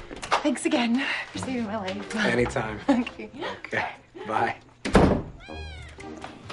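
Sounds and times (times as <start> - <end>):
speech: 0.4 - 4.7
cat meowing: 5.4 - 6.1.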